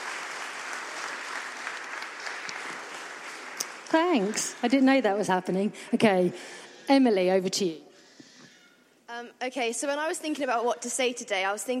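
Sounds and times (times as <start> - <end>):
room full of people applauding: 0.0 - 4.8
speech: 3.9 - 7.9, 9.2 - 11.7.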